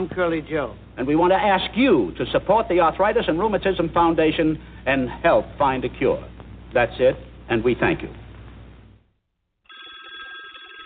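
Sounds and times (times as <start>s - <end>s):
speech: 0.0s - 8.2s
telephone ringing: 9.7s - 10.8s.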